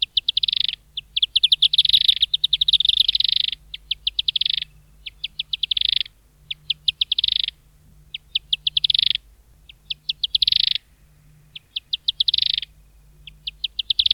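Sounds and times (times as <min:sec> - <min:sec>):
firewood-gatherer calling: 0:00.0 - 0:14.1.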